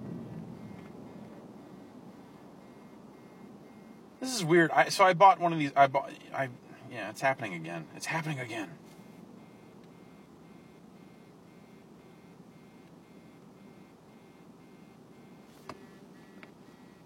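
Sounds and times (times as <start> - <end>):
low rumble: 0.0 - 4.2
phone vibrating from an incoming call at home: 0.0 - 4.2, 8.8 - 17.0
speech: 4.2 - 9.0.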